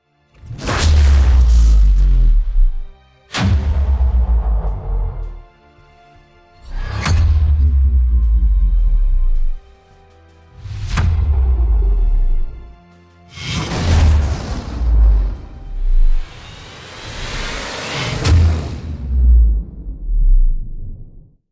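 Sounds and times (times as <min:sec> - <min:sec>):
sub sonic bass: 0:00.4 - 0:05.5, 0:06.7 - 0:09.6, 0:10.6 - 0:12.7, 0:14.0 - 0:16.4, 0:18.2 - 0:21.3.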